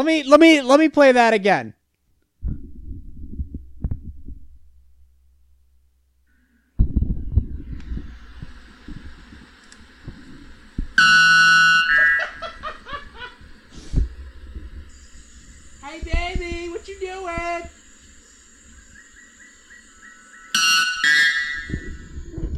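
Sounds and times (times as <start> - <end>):
speech: 0.0 - 1.8, 16.0 - 17.8
low thumps: 2.4 - 6.2, 6.8 - 11.0, 13.1 - 17.8, 21.7 - 22.5
laughter: 12.0 - 13.4
white bellbird screaming its piercing harsh call: 18.8 - 21.8.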